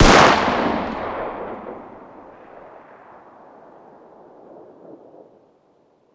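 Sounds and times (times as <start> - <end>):
distant 9x19 pistol firing outdoors: 0.0 - 2.6.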